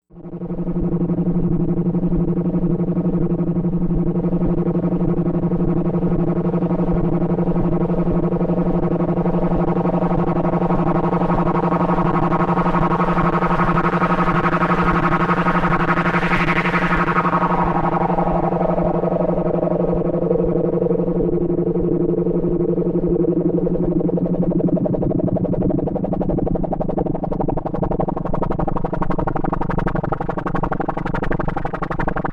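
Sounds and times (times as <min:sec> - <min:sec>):
space bass synth: 0:00.2 - 0:32.3.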